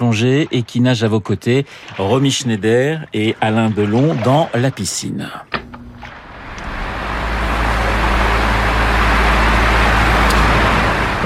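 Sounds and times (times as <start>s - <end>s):
speech: 0.0s - 5.6s
electric fan blowing air: 5.7s - 11.2s.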